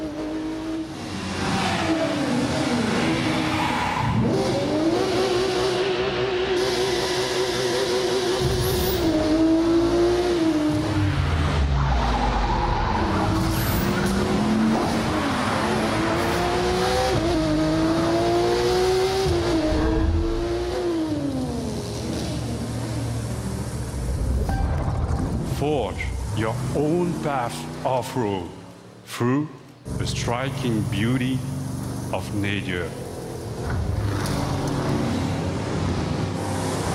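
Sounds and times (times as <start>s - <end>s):
street racing car engines revving on a city rooftop: 0.0s - 24.5s, 25.5s - 36.9s
street racing car tires squealing: 1.0s - 9.3s, 10.7s - 16.4s
speech: 26.8s - 33.0s.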